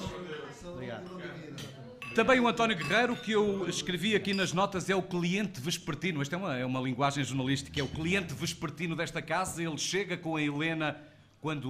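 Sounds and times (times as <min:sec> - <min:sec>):
speech: 0:00.7 - 0:11.6
glasses clinking together in a toast: 0:01.0 - 0:05.0, 0:07.6 - 0:08.4.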